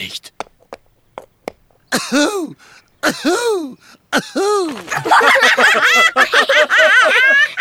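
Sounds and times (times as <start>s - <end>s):
person imitating a dog barking in a hoarse cough-like way: 2.0s - 4.8s
laughter: 2.0s - 7.5s
speech: 2.0s - 7.5s.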